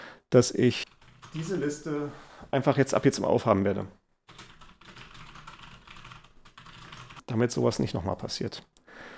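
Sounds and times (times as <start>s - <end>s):
speech: 0.3s - 4.0s, 7.3s - 8.7s
rapid typing of a note on a computer keyboard: 0.9s - 1.5s, 4.3s - 7.3s.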